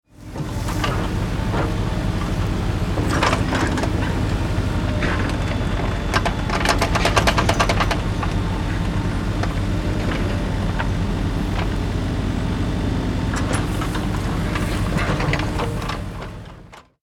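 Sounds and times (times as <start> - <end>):
excavator construction vehicle digging: 0.1 - 17.0.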